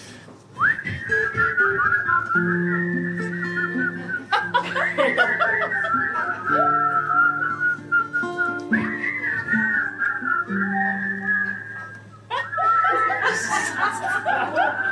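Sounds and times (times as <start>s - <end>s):
audience whistling a melody together: 0.6s - 14.8s
steady music: 1.0s - 12.1s
people laughing and chuckling: 3.6s - 7.3s, 12.3s - 14.8s.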